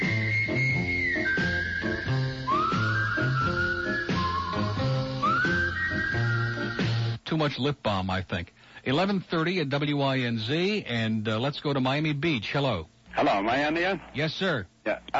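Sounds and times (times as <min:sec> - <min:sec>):
full instrumental backing with rhythmic accompaniment: 0:00.0 - 0:07.2
whistled melody on a recorded song: 0:00.0 - 0:07.2
speech: 0:07.4 - 0:15.1.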